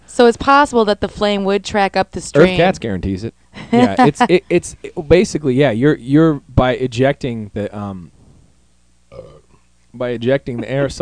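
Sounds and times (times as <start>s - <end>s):
speech: 0.2s - 8.2s, 10.0s - 11.0s
burp: 9.1s - 9.6s.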